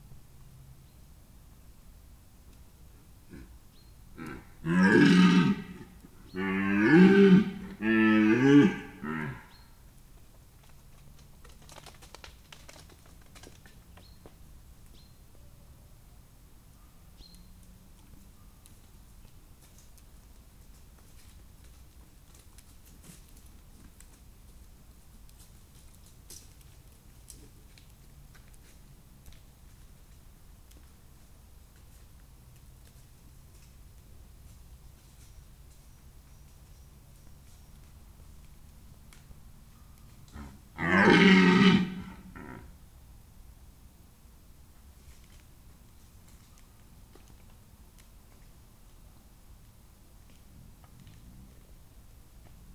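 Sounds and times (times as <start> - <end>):
red deer: 2.9 - 9.6, 39.7 - 42.8.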